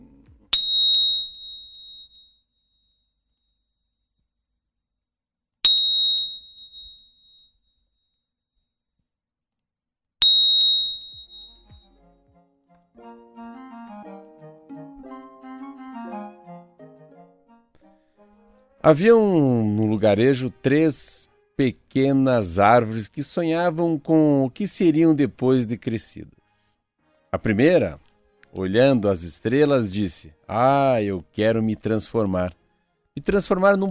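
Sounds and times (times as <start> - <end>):
small bell ringing: 0.5 - 3.6, 5.7 - 7.8, 10.2 - 11.8
speech: 18.8 - 26.4, 27.3 - 32.6, 33.2 - 33.8.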